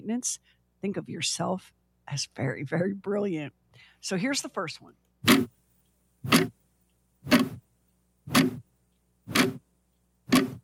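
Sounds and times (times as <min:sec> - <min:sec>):
speech: 0:00.1 - 0:05.6, 0:06.2 - 0:06.6
clock ticking in an empty room: 0:05.2 - 0:07.6, 0:08.3 - 0:10.6.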